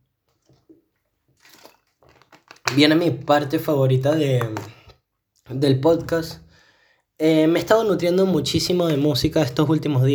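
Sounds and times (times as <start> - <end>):
person sipping and swallowing water: 1.4 - 2.6
plastic bottle crackling as it is squeezed: 1.4 - 3.0
speech: 2.7 - 4.8, 5.5 - 6.4, 7.2 - 10.1.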